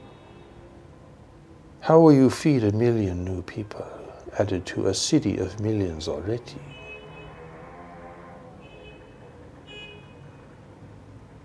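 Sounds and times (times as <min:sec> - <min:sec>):
dense city street traffic rumbling: 0:00.0 - 0:11.4
speech: 0:01.8 - 0:06.8
car horns honking: 0:06.6 - 0:10.6.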